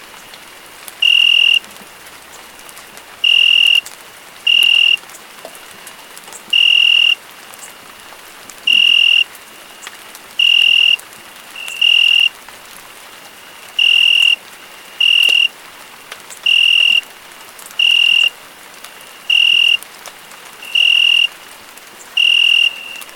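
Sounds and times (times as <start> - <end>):
rain falling: 0.0 - 23.1
cricket chirping: 1.0 - 1.7, 3.2 - 3.9, 4.5 - 5.0, 6.4 - 7.8, 8.6 - 11.0, 11.6 - 12.4, 13.4 - 15.6, 16.3 - 17.1, 17.8 - 19.8, 20.6 - 23.1.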